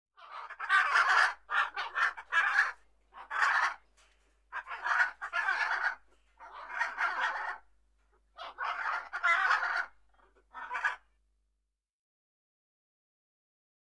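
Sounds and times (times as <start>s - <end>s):
macaw giving harsh grating squawks: 0.3s - 3.8s, 4.5s - 7.6s, 8.4s - 11.0s.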